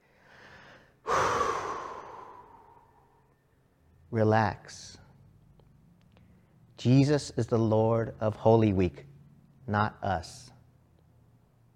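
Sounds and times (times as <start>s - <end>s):
deep breathing: 0.0s - 3.4s
speech: 4.1s - 5.0s, 6.8s - 9.1s, 9.7s - 10.5s.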